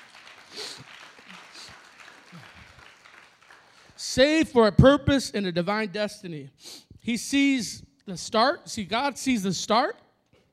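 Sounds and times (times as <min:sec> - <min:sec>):
audience applause: 0:00.0 - 0:04.0
speech: 0:04.2 - 0:10.0.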